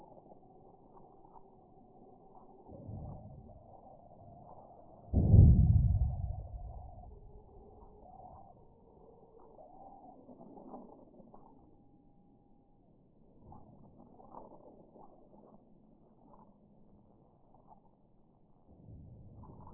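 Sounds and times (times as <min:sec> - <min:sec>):
sonification of magnitude 2.9 earthquake at 6 km depth in San Casciano in Val di Pesa: 0:05.1 - 0:08.4.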